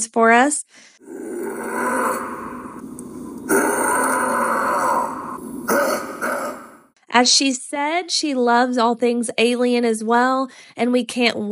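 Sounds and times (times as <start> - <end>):
speech: 0.0 - 2.3, 7.1 - 11.4
person imitating a Bigfoot howl: 1.0 - 6.8.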